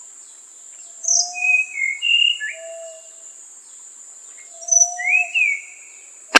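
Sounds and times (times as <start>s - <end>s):
steady high insect drone: 0.0s - 6.3s
Tanahjampea blue flycatcher giving sweet whistled phrases: 1.0s - 3.2s, 4.4s - 5.8s.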